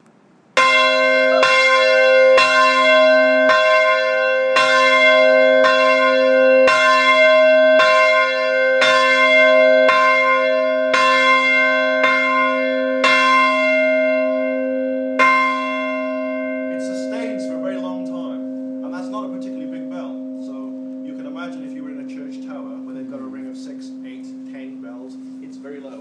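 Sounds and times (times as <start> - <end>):
big bell ringing at a bell foundry: 0.6 - 26.0.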